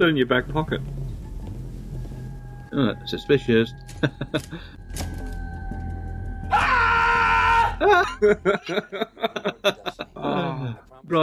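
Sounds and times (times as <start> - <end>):
speech: 0.0 - 1.0, 2.7 - 5.1, 7.8 - 11.2
laughter: 4.0 - 4.7, 7.8 - 10.8
loud human scream in a film scene: 6.5 - 8.1.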